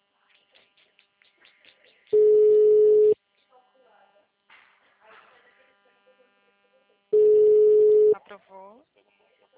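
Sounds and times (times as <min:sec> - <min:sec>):
telephone dial tone while placing a call on a phone line: 0:02.2 - 0:03.2, 0:07.2 - 0:08.2
speech: 0:08.4 - 0:09.2.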